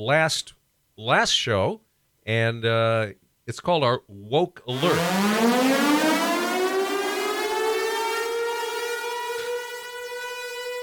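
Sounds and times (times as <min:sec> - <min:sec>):
speech: 0:00.0 - 0:05.7
civil defense siren wailing: 0:04.7 - 0:10.8.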